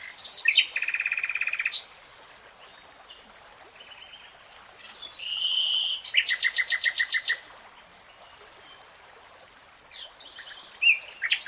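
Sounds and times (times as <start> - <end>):
Nightingale song: 0.0 - 8.9, 9.8 - 11.4.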